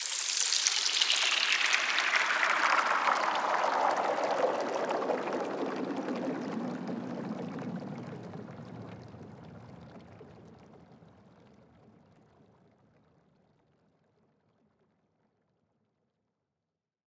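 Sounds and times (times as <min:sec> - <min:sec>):
water downlifter sound effect: 0:00.0 - 0:07.2.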